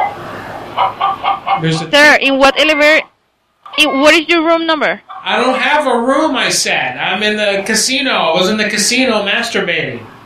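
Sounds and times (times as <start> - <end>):
faint noise: 0.0 - 10.2
chicken clucking on top of a casino elevator: 0.8 - 3.0, 5.0 - 5.6
speech: 1.6 - 3.1, 3.8 - 10.1.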